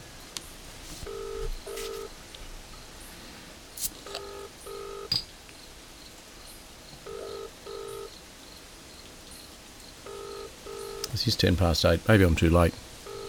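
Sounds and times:
faint static hiss on a telephone line: 0.0 - 13.2
telephone ringing tone on a call to Canberra: 1.0 - 2.1, 4.0 - 5.1, 7.0 - 8.2, 10.0 - 11.1, 13.0 - 13.2
speech: 11.2 - 12.8.

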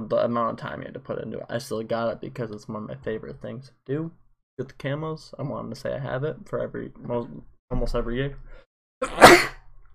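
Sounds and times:
speech: 0.1 - 9.5
person sneezing: 9.0 - 9.7.

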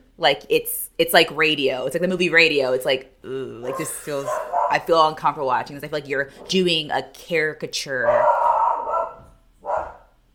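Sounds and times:
speech: 0.2 - 8.4
dog barking: 3.7 - 4.8, 8.0 - 10.1.

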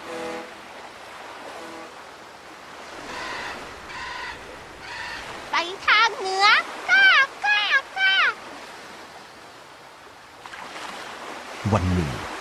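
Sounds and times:
ocean waves: 0.0 - 12.4
crow cawing: 3.1 - 5.3.

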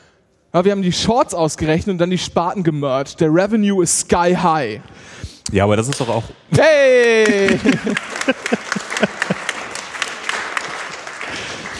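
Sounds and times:
speech: 0.5 - 9.2
laughter: 6.9 - 11.7
live audience applauding: 6.9 - 11.7.

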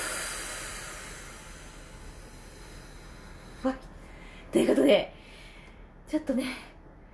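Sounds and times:
deep breathing during a voice-training breathing exercise: 0.0 - 4.6, 5.2 - 6.0
speech: 3.6 - 3.9, 4.5 - 5.2, 6.1 - 6.7.

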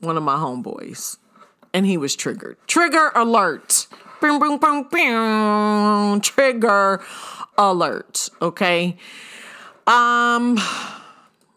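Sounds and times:
speech: 0.0 - 11.0
heavy breathing: 7.0 - 7.6, 9.0 - 9.9.

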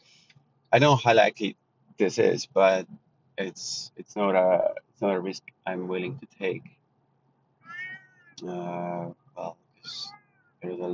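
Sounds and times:
speech: 0.7 - 6.8, 8.4 - 10.9
cat meowing: 7.6 - 8.5, 9.9 - 10.6.

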